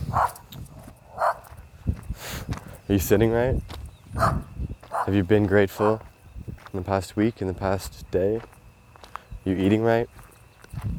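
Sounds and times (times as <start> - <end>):
dog barks: 0.0 - 1.5, 4.2 - 6.0
speech: 2.9 - 6.1, 6.7 - 8.6, 9.5 - 10.2.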